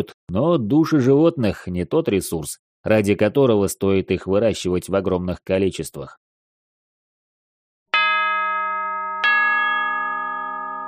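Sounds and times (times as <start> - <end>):
speech: 0.0 - 6.2
metallic bell ringing to mark the end of a school lesson: 8.0 - 10.8.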